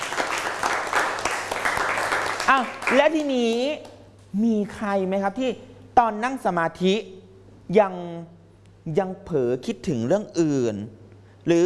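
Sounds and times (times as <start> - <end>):
classmates clapping for a fellow student: 0.0 - 3.3
speech: 2.5 - 11.6.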